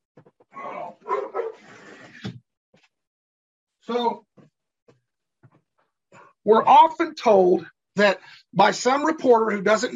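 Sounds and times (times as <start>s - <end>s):
dog barking outside window: 1.0s - 1.6s
speech: 3.9s - 4.2s, 6.5s - 9.9s.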